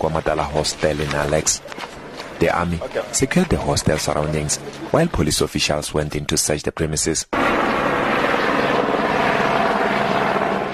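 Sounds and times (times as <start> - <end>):
police helicopter hovering overhead: 0.0 - 5.0, 7.3 - 10.7
speech: 0.0 - 7.7.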